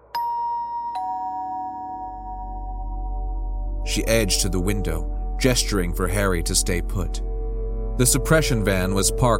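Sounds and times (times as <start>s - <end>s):
doorbell chiming: 0.1s - 3.4s
speech: 3.9s - 7.3s, 8.0s - 9.3s.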